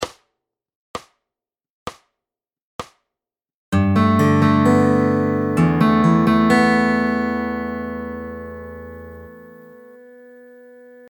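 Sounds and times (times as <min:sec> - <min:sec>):
fingerstyle chords: 0:03.8 - 0:11.0.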